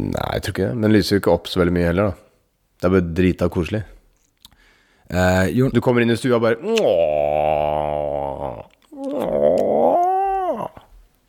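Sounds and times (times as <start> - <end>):
speech: 0.0 - 2.2, 2.8 - 4.0, 5.1 - 8.0
voice imitating stomach rumbling with gurgling groans: 6.6 - 11.0.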